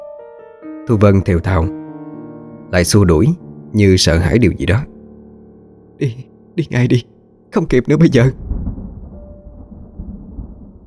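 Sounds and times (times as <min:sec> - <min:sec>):
speech: 0:00.6 - 0:01.8, 0:02.7 - 0:04.9, 0:06.0 - 0:08.4
thunder rumbling during a rainstorm over Bạc Liêu: 0:07.9 - 0:10.8.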